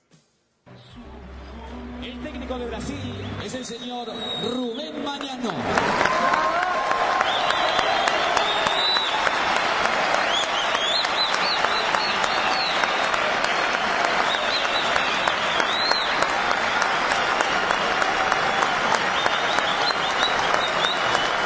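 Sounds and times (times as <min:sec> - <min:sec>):
speech: 0:02.0 - 0:06.6
whistles from stadium crowd: 0:03.0 - 0:05.0, 0:07.2 - 0:09.4, 0:10.2 - 0:21.4
large stadium crowd of fans applauding: 0:03.4 - 0:21.4
stadium crowd shouting: 0:05.8 - 0:21.4.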